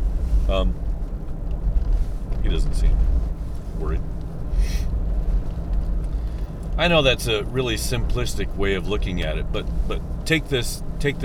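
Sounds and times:
truck engine rumble heard from inside the cabin: 0.0s - 11.2s
speech: 0.5s - 0.8s, 6.8s - 11.2s.

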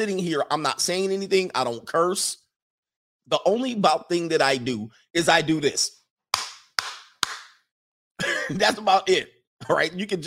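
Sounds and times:
speech: 0.0s - 2.4s, 3.3s - 6.0s, 8.5s - 10.2s
sharp hand claps: 6.3s - 7.6s.

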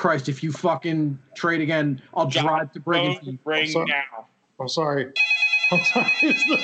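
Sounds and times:
laughter: 0.0s - 4.0s, 5.7s - 6.6s
speech: 0.0s - 6.6s
early-1990s Panasonic electronic cordless phone ringing with a warbling trill: 5.2s - 6.6s.

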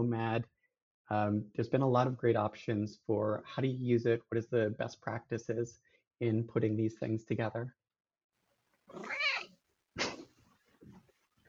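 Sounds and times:
speech: 0.0s - 7.8s, 8.9s - 9.2s
cat faint trailing chirp: 8.9s - 9.5s
cat meowing: 8.9s - 9.6s.

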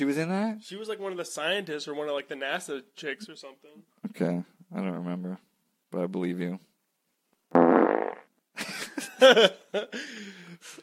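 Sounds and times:
speech: 0.0s - 6.7s, 8.6s - 10.8s
loud buzzy fart sound effect: 7.5s - 8.3s.

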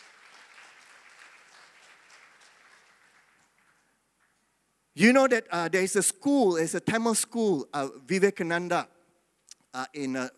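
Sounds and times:
audience clapping: 0.0s - 4.4s
speech: 5.0s - 8.9s, 9.7s - 10.3s.

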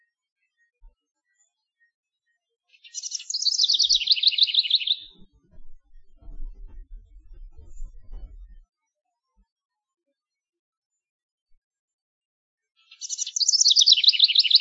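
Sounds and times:
male house wren singing in search of a mate: 2.8s - 5.2s, 12.9s - 14.5s
low rumbling: 5.0s - 8.6s.

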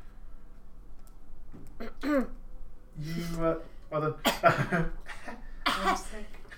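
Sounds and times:
faint low hum: 0.0s - 6.5s
raspy coughing from a tickle in the throat: 4.2s - 6.2s.

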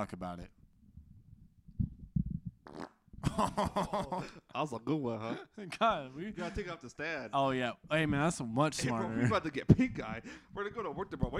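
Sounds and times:
speech: 0.0s - 0.6s, 2.7s - 11.3s
low sputtering fart: 2.6s - 3.2s.

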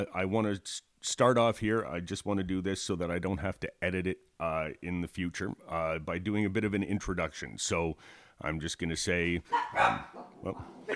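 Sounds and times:
speech: 0.0s - 10.9s
dog barking: 9.5s - 10.9s.

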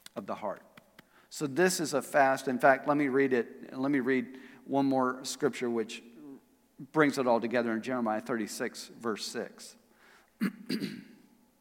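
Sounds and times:
speech: 0.2s - 0.7s, 1.3s - 6.1s, 6.8s - 9.8s, 10.4s - 11.1s
rough throat clearing: 10.4s - 11.2s.

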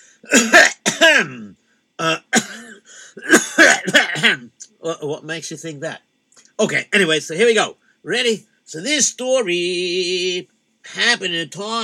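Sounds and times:
speech: 0.2s - 1.4s, 4.9s - 11.8s
person clearing throat loudly: 0.3s - 4.5s.

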